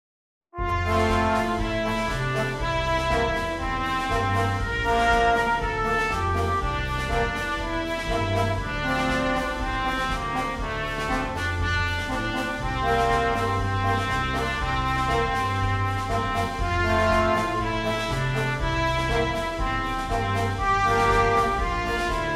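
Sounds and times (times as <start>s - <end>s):
national anthem: 0.6s - 22.3s.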